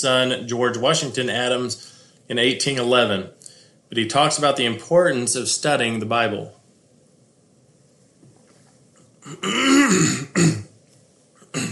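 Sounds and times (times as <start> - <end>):
speech: 0.0 - 6.6, 9.2 - 10.7
man clearing throat: 9.2 - 10.7, 11.4 - 11.7.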